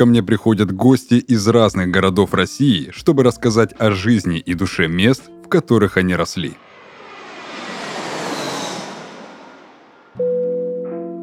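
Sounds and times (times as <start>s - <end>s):
speech: 0.0s - 6.6s
airplane engine roar during descent: 6.4s - 10.2s.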